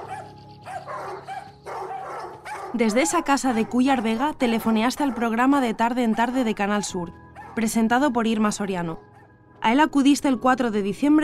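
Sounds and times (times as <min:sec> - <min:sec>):
dogs barking as a warning from inside houses: 0:00.0 - 0:07.8, 0:08.9 - 0:09.4
speech: 0:02.7 - 0:11.2.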